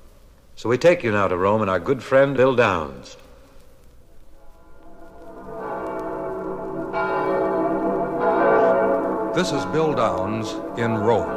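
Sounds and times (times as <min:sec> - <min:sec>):
speech: 0:00.6 - 0:03.2, 0:09.4 - 0:11.3
large church bells ringing for midnight mass: 0:04.4 - 0:11.3.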